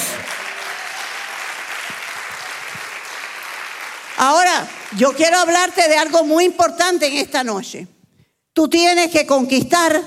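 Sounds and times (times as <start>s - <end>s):
large audience applause: 0.0s - 5.4s
speech: 4.2s - 8.0s, 8.6s - 10.0s.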